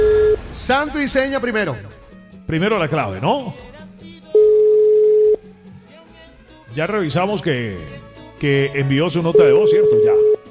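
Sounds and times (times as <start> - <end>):
steady mid-pitched telephone tone while a call is placed: 0.0 - 0.4, 4.4 - 5.4, 9.3 - 10.4
speech: 0.7 - 3.7, 6.8 - 10.3.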